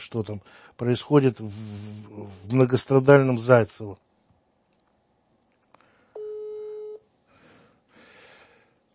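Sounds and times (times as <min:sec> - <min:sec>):
speech: 0:00.0 - 0:04.1
telephone ringback tone: 0:06.2 - 0:07.0.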